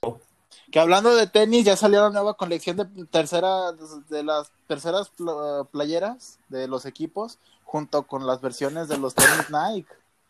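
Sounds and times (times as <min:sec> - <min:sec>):
speech: 0:00.0 - 0:10.0
person sneezing: 0:08.6 - 0:09.6.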